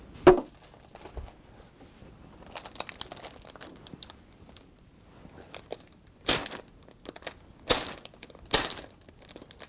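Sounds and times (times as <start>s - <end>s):
plastic packet being torn open: 2.4s - 4.2s, 5.5s - 9.6s.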